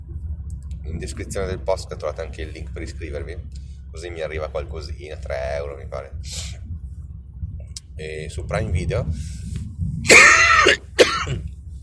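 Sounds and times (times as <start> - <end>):
speech: 0.8 - 6.6, 8.0 - 11.5
harsh cough: 10.1 - 11.4.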